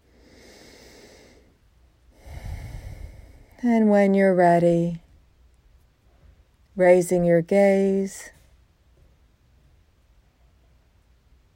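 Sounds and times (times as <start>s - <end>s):
long slow deep breathing during a guided relaxation: 0.0s - 3.7s
speech: 3.6s - 5.0s, 6.8s - 8.4s.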